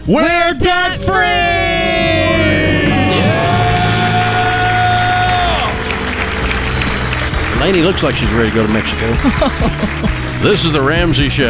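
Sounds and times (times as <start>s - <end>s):
speech: 0.0s - 1.7s, 7.6s - 11.4s
noisy crowd cheering and clapping: 1.1s - 11.4s
people whooping: 1.2s - 10.1s
loud sustained celebratory scream: 1.4s - 5.8s
laughter: 2.4s - 10.9s.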